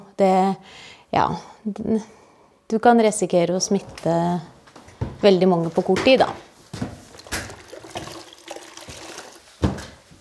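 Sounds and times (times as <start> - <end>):
speech: 0.2 - 4.5, 5.2 - 6.9
water splashing as someone washes a corridor floor: 7.1 - 9.9.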